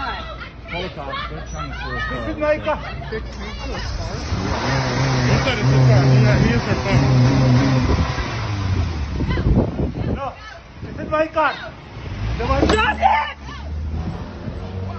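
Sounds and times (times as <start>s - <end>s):
people chattering excitedly: 0.0s - 14.9s
car engine idling and revving during a car theft: 3.1s - 14.9s.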